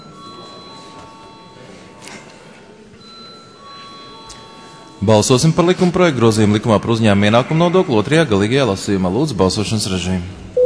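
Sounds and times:
parliamentary voting electronic bell ringing in a large hall: 0.0 - 1.9, 3.0 - 6.0
low murmur of room noise: 0.0 - 10.6
speech: 5.0 - 10.4.

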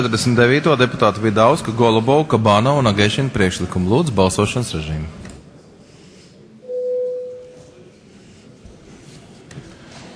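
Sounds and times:
speech: 0.0 - 5.2
parliamentary voting signal electronic bell tone: 6.6 - 7.8.

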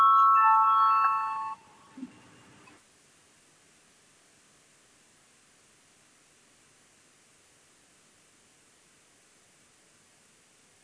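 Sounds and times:
electronic parliamentary voting bell ringing: 0.0 - 1.8.

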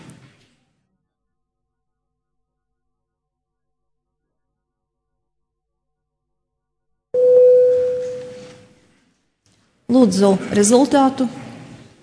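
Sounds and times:
parliamentary voting bell mid-pitched chime: 7.2 - 8.7
speech: 9.9 - 11.4.

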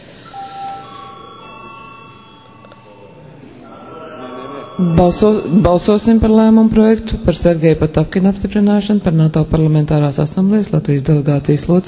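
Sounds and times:
bell rung to call members to a vote in the Latvian parliament: 0.3 - 6.7
speech: 4.8 - 11.8.

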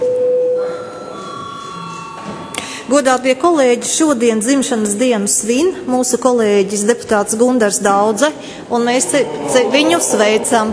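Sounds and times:
electronic bell tone calling deputies to registration in a parliament chamber: 0.0 - 2.9
faint noise: 0.0 - 10.7
speech: 2.9 - 10.7.

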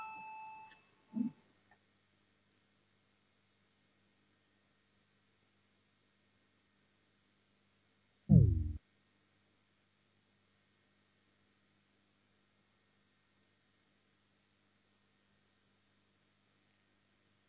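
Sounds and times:
parliament voting bell electronic tone: 0.0 - 0.7
loud low thud: 8.3 - 8.8.

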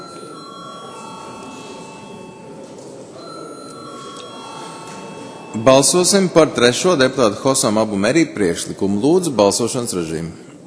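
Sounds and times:
electric bell ringing in a parliament chamber before a vote: 0.0 - 7.1
murmur of chatter: 0.0 - 10.6
speech: 5.5 - 10.5.

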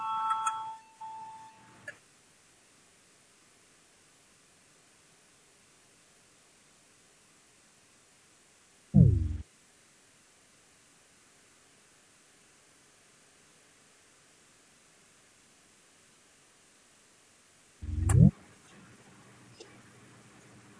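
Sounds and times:
parliamentary voting bell ringing: 0.0 - 1.4
dull low thump: 9.0 - 9.4, 17.8 - 18.3.

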